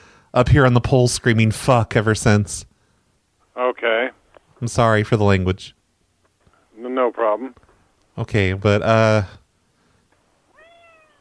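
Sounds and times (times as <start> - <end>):
speech: 0.4 - 2.7, 3.6 - 5.8, 6.9 - 7.6, 8.2 - 9.4
cat meowing: 10.5 - 11.2.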